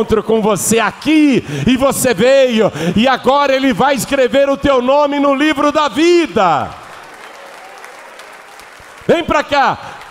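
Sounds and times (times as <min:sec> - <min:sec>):
speech: 0:00.0 - 0:06.8, 0:09.1 - 0:10.0
crowd applauding at a religious gathering: 0:06.1 - 0:10.0.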